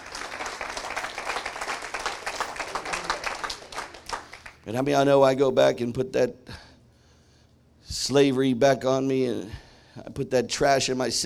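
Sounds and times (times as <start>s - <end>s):
audience applauding: 0.0s - 4.6s
speech: 4.7s - 6.5s, 8.1s - 11.2s.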